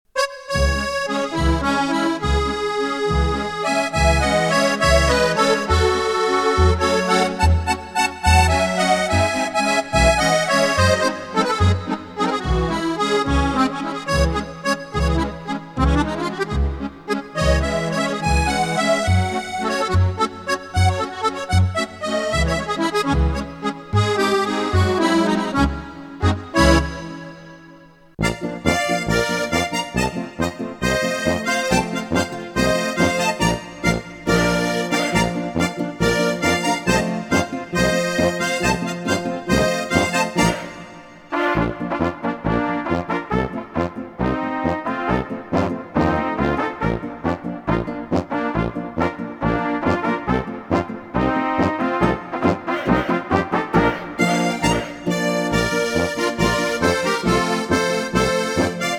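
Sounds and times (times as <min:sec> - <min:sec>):
accordion playing: 0:00.1 - 0:58.9.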